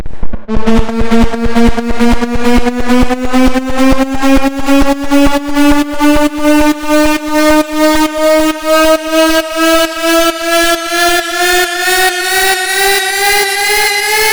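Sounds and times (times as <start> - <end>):
pitch riser: 0.1 - 14.3.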